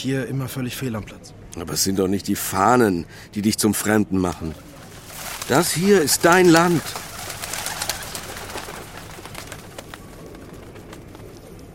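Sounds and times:
speech: 0.0s - 4.7s, 5.5s - 7.0s
steady broadband noise: 0.0s - 11.7s
pigeons cooing: 4.4s - 11.7s.

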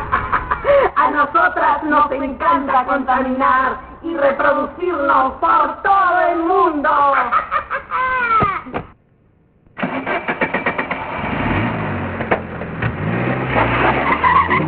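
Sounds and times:
laughter: 0.0s - 1.4s, 6.9s - 8.7s
speech: 1.4s - 8.5s
modern luxury car tires screeching as it skids: 9.8s - 14.6s.

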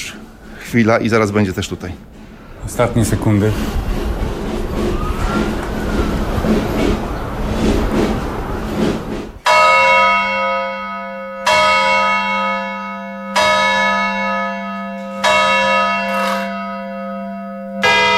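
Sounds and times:
speech: 0.7s - 3.9s
rising siren-like tone: 4.6s - 7.4s
clock tower gongs without clappers struck by external hammers: 5.3s - 18.1s.

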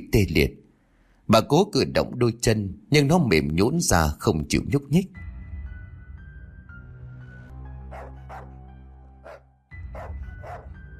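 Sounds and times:
speech: 0.1s - 0.6s, 1.3s - 5.2s
black dog barking: 7.9s - 8.6s, 9.2s - 10.8s.

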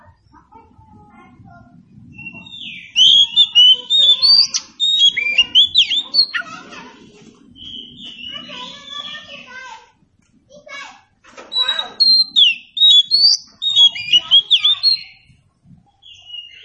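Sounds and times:
low background hum: 0.0s - 16.6s
Oriental Magpie-Robin song with rich whistled notes and slurs: 2.1s - 6.8s, 7.5s - 9.5s, 11.5s - 15.3s, 16.0s - 16.6s.

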